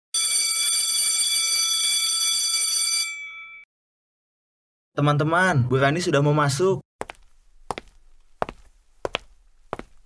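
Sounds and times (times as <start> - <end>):
school bell ringing to signal the start of class: 0.2 - 3.7
speech: 5.0 - 6.9.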